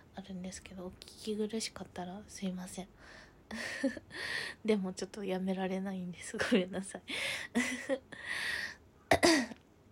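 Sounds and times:
speech: 0.3 - 9.5
habitual throat clearing by a person: 9.1 - 9.6.

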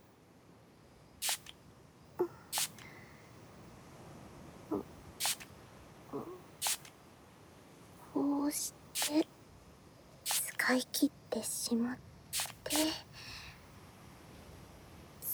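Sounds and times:
alcohol spray bottle spritzing onto hands: 1.2 - 1.5, 2.2 - 3.1, 5.2 - 5.5, 6.6 - 6.9, 9.0 - 9.3, 10.2 - 10.7, 12.3 - 13.1
speech: 10.7 - 12.1.

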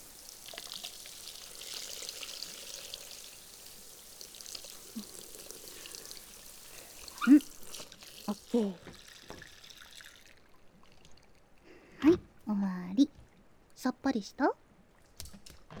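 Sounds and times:
water poured to rinse soap foam off a body: 0.0 - 11.9
speech: 8.6 - 8.9, 13.8 - 14.6.

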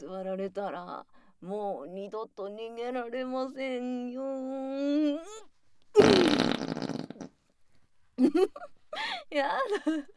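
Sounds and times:
woman vocal sounds: 0.0 - 7.3
speech: 0.0 - 7.4, 8.2 - 10.1
loud drawn-out raspy fart: 6.0 - 7.4.

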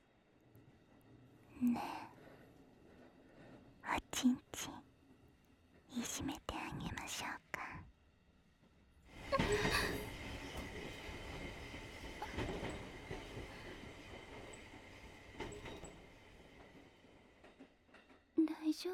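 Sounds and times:
train rumbling along the tracks: 0.1 - 7.7, 8.4 - 18.9
speech: 1.6 - 2.1, 4.2 - 4.8, 6.0 - 6.4.

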